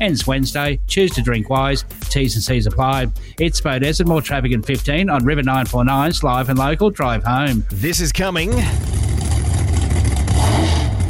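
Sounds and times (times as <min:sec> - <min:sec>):
speech: 0:00.0 - 0:09.0
Pro Stock drag racing car engine revving hard: 0:08.6 - 0:11.0.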